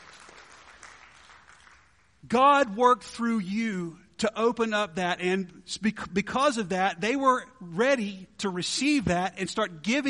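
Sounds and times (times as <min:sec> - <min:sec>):
audience clapping: 0:00.0 - 0:02.2
speech: 0:02.2 - 0:10.0.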